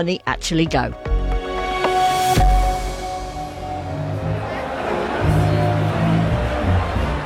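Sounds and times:
speech: 0.0s - 1.1s
dense crowd babble in a big Oktoberfest beer tent: 2.4s - 7.2s.

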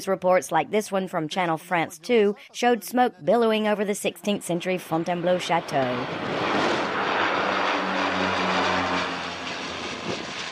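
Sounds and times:
speech: 0.0s - 6.6s
Canadair firefighting plane flying overhead: 4.4s - 10.4s.

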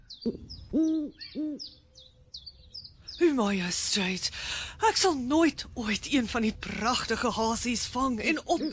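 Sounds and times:
speech: 0.2s - 1.8s, 3.2s - 8.7s
owl hooting: 0.2s - 2.4s.

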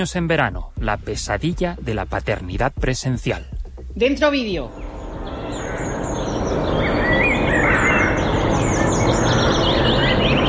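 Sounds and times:
speech: 0.0s - 4.8s
many birds chirping and singing in a winter park: 4.2s - 10.4s.

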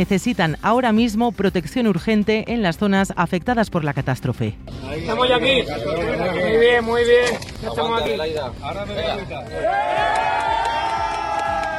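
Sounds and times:
speech: 0.0s - 10.4s
Spanish military emergency-unit rescuers cheering and shouting: 9.4s - 11.7s.

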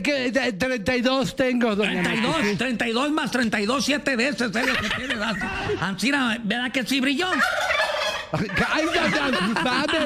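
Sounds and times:
speech: 0.0s - 10.0s
laughter: 4.4s - 6.0s, 8.2s - 10.0s
person imitating a turkey gobble: 7.2s - 9.4s.

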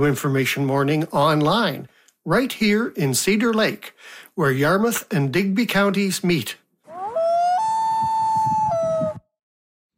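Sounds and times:
speech: 0.0s - 6.6s
recorded loon wailing call: 6.9s - 9.2s.

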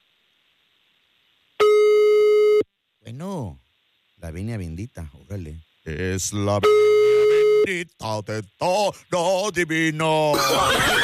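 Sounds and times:
telephone tone while a caller is being dialed: 1.6s - 2.7s, 6.6s - 7.7s
speech: 3.1s - 3.6s, 4.2s - 11.0s
laughter: 10.3s - 11.0s.

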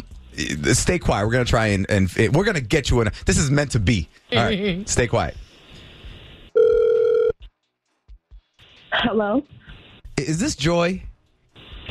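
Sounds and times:
speech: 0.4s - 5.4s, 9.0s - 9.6s, 10.2s - 11.1s
ringback tone of an outgoing phone call: 6.6s - 7.4s.

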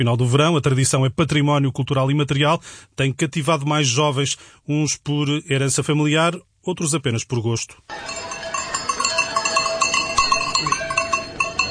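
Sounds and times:
speech: 0.0s - 8.4s
bells of a herd of cows being driven to pasture clanking: 7.9s - 11.6s.

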